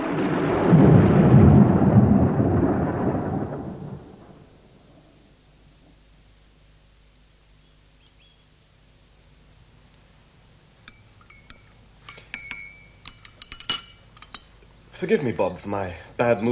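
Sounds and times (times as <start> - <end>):
deep roll of thunder in a thunderstorm: 0.0 - 5.4
light clinks of glass or dishes: 10.8 - 14.5
speech: 15.0 - 16.5.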